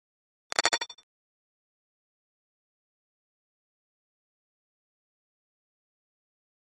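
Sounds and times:
electronic flash gear: 0.5 - 1.0.

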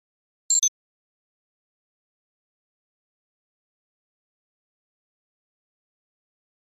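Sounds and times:
electronic double beep: 0.5 - 0.7.

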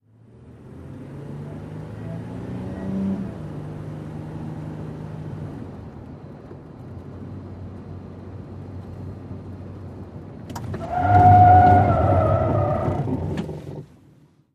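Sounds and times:
SUV skidding 180 degrees heard from the interior: 10.5 - 13.9.

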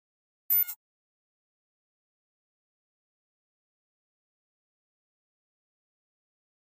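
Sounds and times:
flash electronic beep tone: 0.5 - 0.8.

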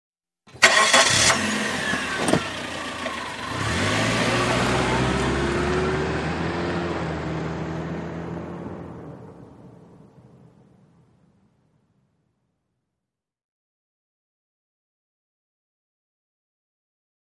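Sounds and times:
compact car accelerating while parking: 0.6 - 10.3.

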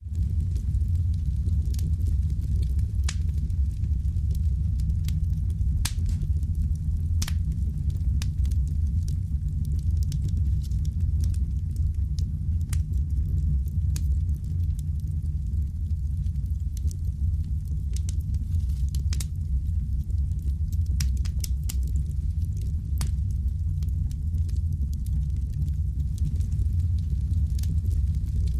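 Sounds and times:
deep fire burning and crackling: 0.0 - 28.5.

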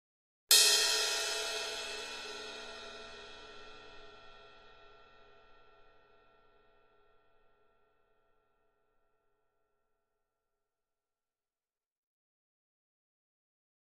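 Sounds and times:
medium cymbal single hit: 0.5 - 6.1.

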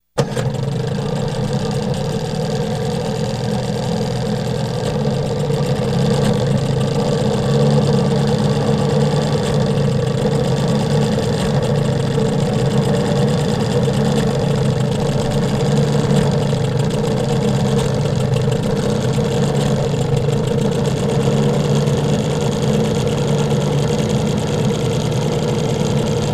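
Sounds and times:
10 hp boat engine idling: 0.2 - 26.3.

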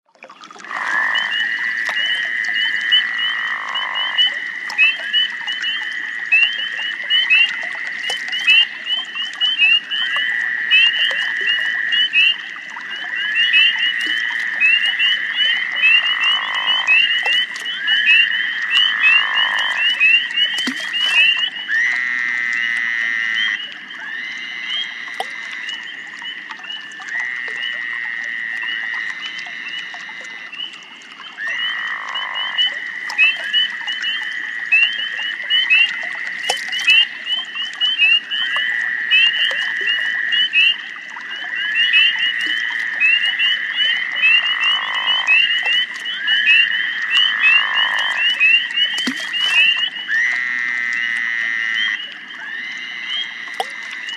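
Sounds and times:
distant frog croaking in a swamp: 0.3 - 54.1.

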